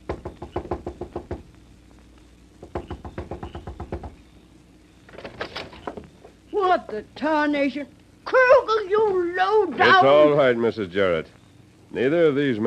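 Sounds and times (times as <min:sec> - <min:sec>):
rapid knocking on the door of a boarding house: 0:00.0 - 0:01.5, 0:02.6 - 0:04.2
speech: 0:06.8 - 0:12.6.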